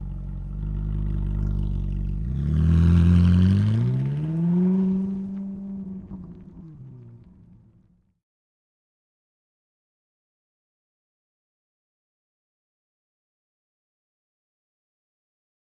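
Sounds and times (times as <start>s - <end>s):
Ferrari 458 passing fast outside: 0.4s - 7.8s.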